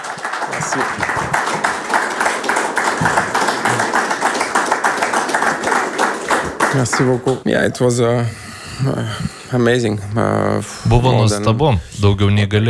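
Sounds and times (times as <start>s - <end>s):
journalists applauding a tennis player: 0.0s - 7.6s
speech: 0.7s - 1.3s, 6.8s - 12.6s.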